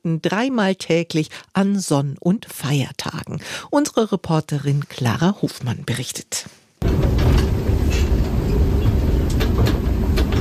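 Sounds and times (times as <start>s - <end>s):
speech: 0.0s - 8.0s
train metallic clicks and clanks: 6.8s - 10.3s
train rumbling at a station: 6.8s - 10.3s.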